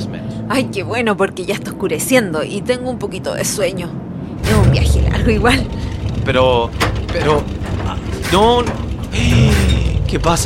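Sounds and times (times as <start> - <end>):
speech: 0.5 - 9.5, 10.1 - 10.4
car engine sputtering out of fuel: 4.3 - 10.4
anxious voices talking: 4.4 - 10.4.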